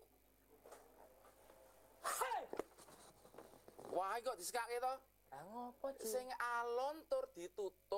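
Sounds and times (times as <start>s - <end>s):
shuffling: 0.6s - 4.1s
person sneezing: 2.0s - 2.5s
speech: 4.0s - 7.9s.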